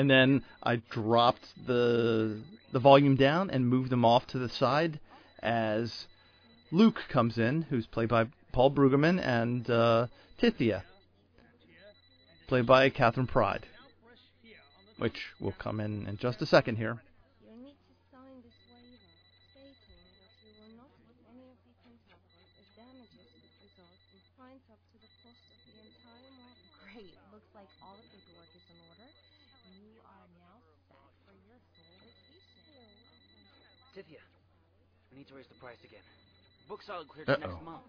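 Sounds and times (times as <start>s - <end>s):
speech: 0.0s - 6.1s, 6.7s - 10.9s, 12.5s - 13.7s, 15.0s - 17.1s, 35.3s - 37.8s
telephone ringing: 0.0s - 17.0s, 18.4s - 21.0s, 22.2s - 24.4s, 25.0s - 30.0s, 31.7s - 34.2s, 35.2s - 37.8s.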